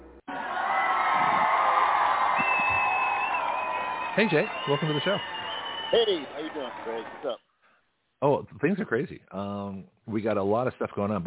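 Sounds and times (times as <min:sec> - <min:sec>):
whoops: 0:00.3 - 0:07.1
loud crowd cheering and applauding: 0:00.3 - 0:07.4
sharp whistle: 0:02.4 - 0:07.0
speech: 0:04.2 - 0:07.5, 0:08.2 - 0:11.2.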